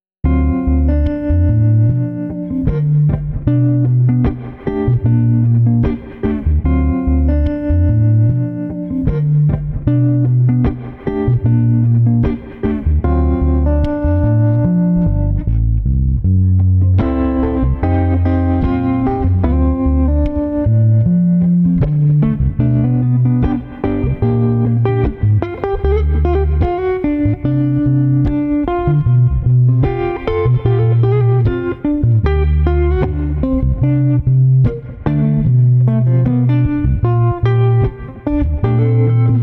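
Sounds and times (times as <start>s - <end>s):
funky chill bass guitar: 0.2s - 39.4s.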